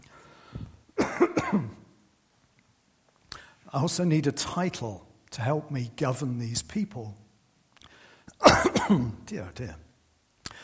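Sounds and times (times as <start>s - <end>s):
person coughing after choking on water: 1.0s - 1.8s, 8.4s - 9.2s
speech: 3.8s - 7.2s, 8.4s - 9.8s.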